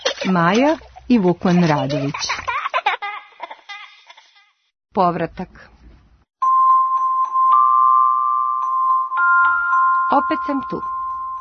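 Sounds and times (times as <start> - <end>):
speech: 0.2 - 2.3, 5.0 - 5.7, 10.1 - 11.0
school bell ringing: 6.4 - 11.4.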